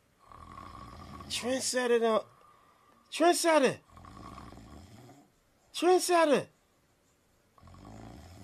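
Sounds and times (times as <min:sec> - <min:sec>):
sleeping woman snoring loudly: 0:00.2 - 0:01.7, 0:03.8 - 0:05.3, 0:07.6 - 0:08.4
speech: 0:01.3 - 0:02.3, 0:03.1 - 0:03.8, 0:05.8 - 0:06.5.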